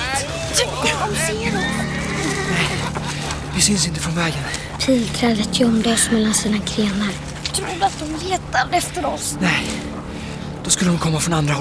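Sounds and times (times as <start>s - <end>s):
horse hooves clopping: 0.0s - 8.4s
steady low rumble of commotion: 0.0s - 11.5s
horses ridden by soldiers neighing and whinnying: 0.8s - 3.5s
speech: 3.6s - 9.9s, 10.7s - 11.5s.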